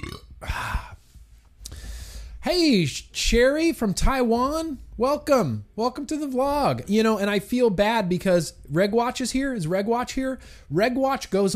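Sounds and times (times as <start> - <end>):
person burping after drinking beer: 0.0 - 1.0
speech: 2.5 - 11.5.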